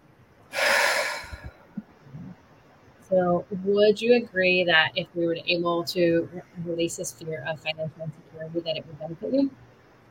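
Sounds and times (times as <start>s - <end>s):
deep inhale and exhale: 0.5s - 1.8s
speech: 3.1s - 9.7s.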